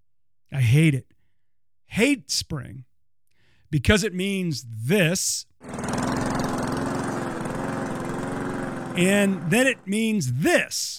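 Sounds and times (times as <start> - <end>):
speech: 0.6 - 1.1, 1.9 - 2.9, 3.7 - 5.8, 9.0 - 10.9
lawn mower engine running in spring yard work: 5.6 - 10.0.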